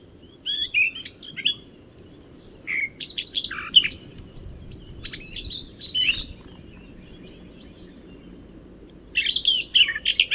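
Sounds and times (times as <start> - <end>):
Eurasian blackcap Sylvia atricapilla singing: 0.5 - 10.3
steady low background rumble: 3.5 - 10.3.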